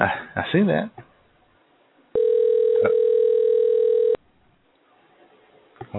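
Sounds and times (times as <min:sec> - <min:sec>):
speech: 0:00.0 - 0:01.0
steady buzzing telephone tone as a handset is dialed: 0:02.2 - 0:04.2.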